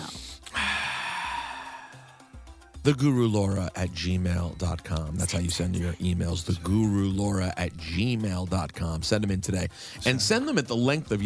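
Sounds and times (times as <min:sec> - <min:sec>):
long deep breath during breathing exercise: 0:00.2 - 0:02.6
speech: 0:02.8 - 0:11.2.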